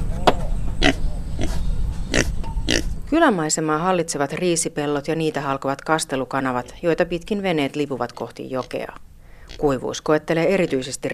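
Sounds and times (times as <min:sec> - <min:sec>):
low noise: 0:00.0 - 0:11.1
pig grunting behind a village house: 0:00.7 - 0:02.9
speech: 0:03.1 - 0:11.1.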